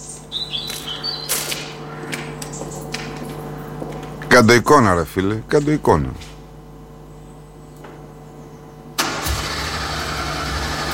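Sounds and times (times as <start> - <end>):
speech: 4.4 - 6.3
car engine cranking and failing to start: 9.0 - 10.9.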